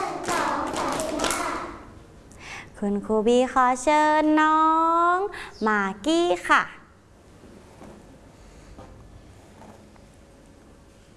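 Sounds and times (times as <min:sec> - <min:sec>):
group of children in a classroom slapping their laps: 0:00.0 - 0:01.7
speech: 0:02.8 - 0:06.8.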